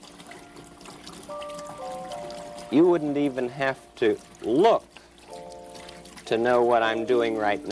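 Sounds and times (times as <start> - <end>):
water running from a tap rinsing a paintbrush: 0.0 - 7.6
speech: 2.7 - 4.9, 6.3 - 7.6.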